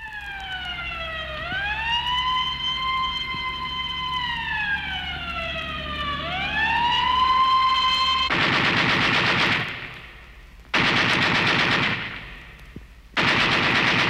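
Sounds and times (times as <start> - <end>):
wailing siren: 0.0 - 8.3
machine gun fire: 8.3 - 10.2, 10.8 - 12.5, 13.2 - 14.0.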